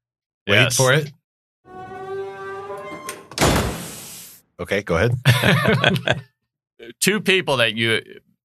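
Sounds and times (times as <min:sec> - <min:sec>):
speech: 0:00.5 - 0:01.2, 0:04.6 - 0:08.3
door creaking on its hinges: 0:01.7 - 0:04.3
door shutting with a loud thud: 0:02.9 - 0:04.2
laughter: 0:05.2 - 0:06.4.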